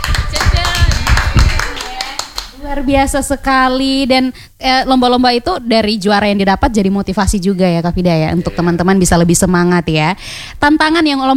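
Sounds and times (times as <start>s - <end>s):
applause at a gathering celebrating a competition win: 0.0s - 2.6s
speech: 2.7s - 11.3s.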